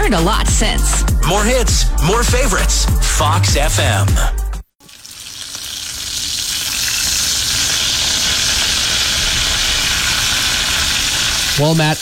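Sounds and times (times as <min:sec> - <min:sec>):
speech: 0:00.1 - 0:04.4, 0:11.6 - 0:12.0
bacon sizzling in a frying pan: 0:04.8 - 0:12.0.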